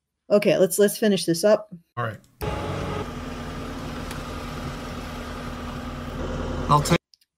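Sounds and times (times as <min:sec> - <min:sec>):
speech: 0:00.3 - 0:02.3, 0:06.7 - 0:07.0
car engine pulling away: 0:02.4 - 0:07.0.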